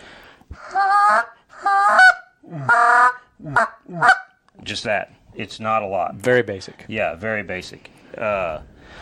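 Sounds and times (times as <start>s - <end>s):
goose call reedy honks: 0.8s - 4.3s
speech: 4.7s - 9.0s.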